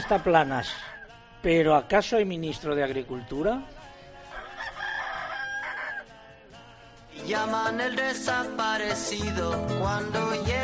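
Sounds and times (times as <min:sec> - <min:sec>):
rooster crowing: 0:00.0 - 0:01.2, 0:04.2 - 0:06.1
speech: 0:00.1 - 0:03.8, 0:07.2 - 0:10.6.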